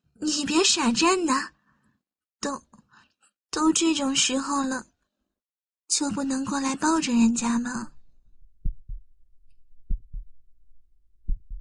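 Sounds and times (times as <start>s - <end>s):
speech: 0.2s - 1.6s, 2.4s - 2.7s, 3.6s - 4.9s, 5.9s - 7.9s
heartbeat with lub-dub double thumps: 8.4s - 10.5s, 11.2s - 11.5s.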